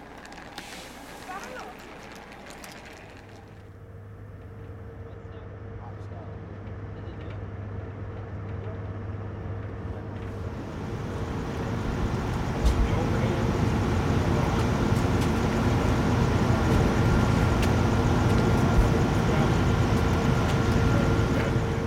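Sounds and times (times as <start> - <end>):
small clicks and rattles: 0.0 - 3.8
faint road rumble from bumps and potholes: 0.0 - 5.8, 6.4 - 21.8
charter bus engine drone on the freeway: 0.0 - 21.8.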